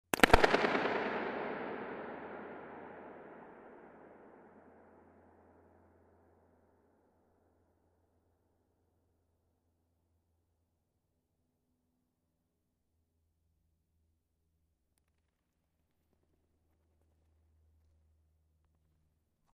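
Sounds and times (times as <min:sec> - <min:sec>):
balloon burst in centre of dome: 0:00.1 - 0:04.5.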